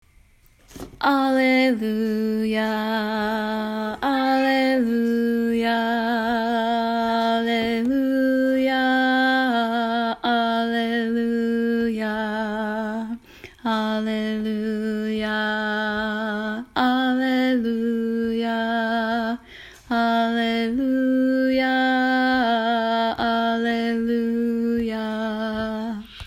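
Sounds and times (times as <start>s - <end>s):
alto voice singing: 1.0s - 26.2s.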